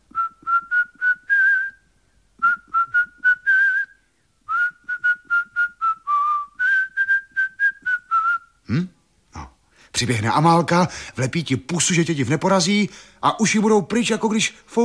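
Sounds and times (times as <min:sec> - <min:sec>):
person whistling lively phrases: 0:00.1 - 0:01.8, 0:02.4 - 0:08.8
speech: 0:10.0 - 0:14.8.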